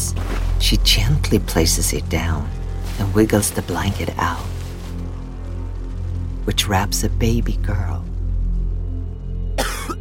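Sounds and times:
low steady rumble: 0.0 - 9.8
speech: 0.7 - 4.5, 6.4 - 8.1
man giving a short harsh cough: 9.6 - 9.9.

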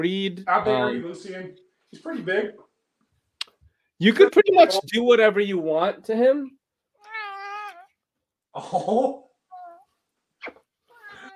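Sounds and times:
speech: 0.0 - 2.7, 4.0 - 6.6, 8.6 - 9.2
big purebred male ragdoll cat meowing: 7.0 - 8.0, 9.5 - 9.9, 10.9 - 11.3.

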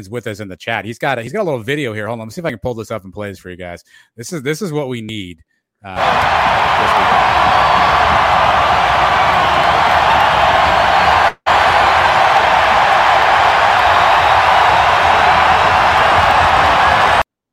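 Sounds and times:
speech: 0.0 - 7.6
huge home stadium crowd roaring and cheering: 6.0 - 17.3.

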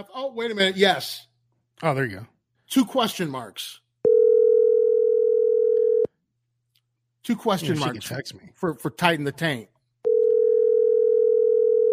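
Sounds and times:
speech: 0.0 - 3.8, 7.2 - 9.7
phone line ringing tone: 4.0 - 6.1, 10.0 - 11.9.

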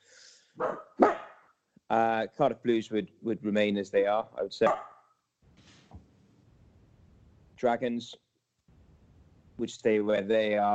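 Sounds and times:
dog barking: 0.6 - 1.4, 4.6 - 5.0
speech: 1.9 - 4.9, 7.6 - 8.2, 9.6 - 10.7.

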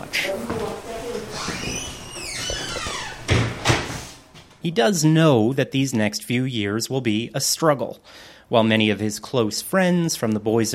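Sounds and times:
door creaking open: 1.0 - 4.1
speech: 4.6 - 10.7.

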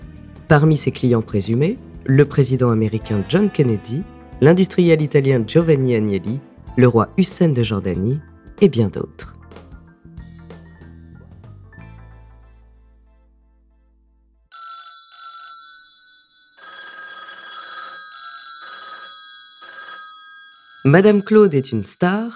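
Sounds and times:
brief musical passage: 0.0 - 7.8
speech: 0.5 - 9.4, 20.9 - 22.3
telephone bell ringing: 14.5 - 22.3.

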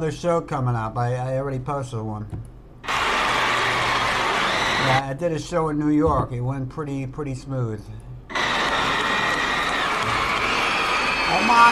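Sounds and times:
speech: 0.0 - 2.5, 4.8 - 8.0, 11.3 - 11.7
crowd applauding and cheering: 2.9 - 5.0, 8.3 - 11.7.

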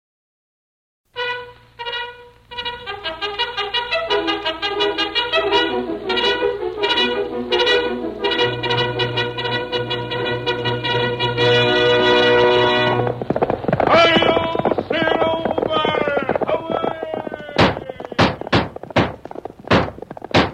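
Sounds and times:
loud brassy music: 1.1 - 15.8
horse hooves pounding: 1.8 - 20.5.

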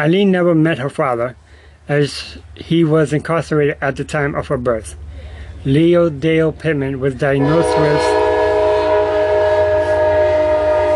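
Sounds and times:
speech: 0.0 - 8.2
low rumble of rail noise: 0.0 - 10.9
loud sustained train horn blaring: 7.4 - 10.9.

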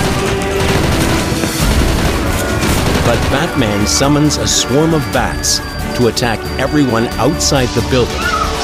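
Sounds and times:
gunfire during a chase through rubble: 0.0 - 3.8
speech: 3.1 - 8.5.

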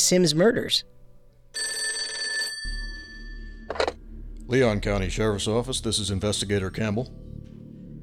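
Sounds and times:
speech: 0.1 - 1.0, 4.5 - 7.3
telephone bell ringing: 1.6 - 3.9.

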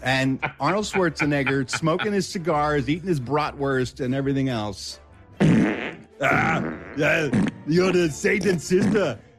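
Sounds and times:
speech: 0.0 - 9.3
laughter: 0.1 - 2.4
fart sounds: 5.4 - 7.8, 8.4 - 9.2.

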